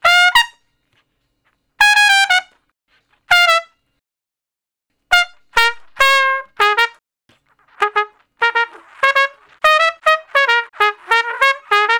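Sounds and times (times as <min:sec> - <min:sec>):
solo straight B-flat trumpet: 0:00.0 - 0:00.7, 0:01.8 - 0:02.6, 0:03.3 - 0:03.8, 0:05.1 - 0:07.0, 0:07.6 - 0:11.9.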